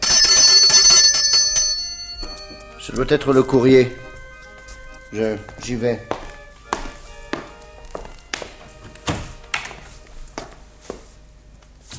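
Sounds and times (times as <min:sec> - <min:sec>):
doorbell ringing with a rapid rattling metallic trill: 0:00.0 - 0:04.6
speech: 0:02.9 - 0:04.0, 0:05.1 - 0:06.2.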